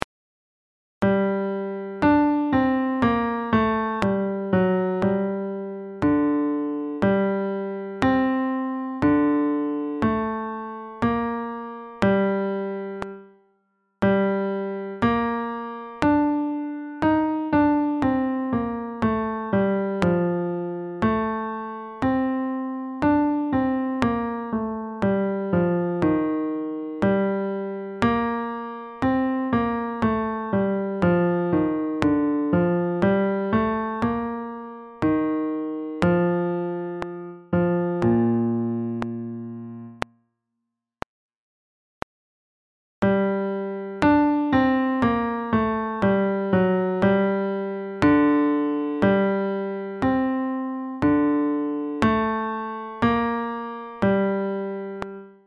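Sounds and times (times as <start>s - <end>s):
slow piano: 1.0s - 40.1s, 43.0s - 55.4s.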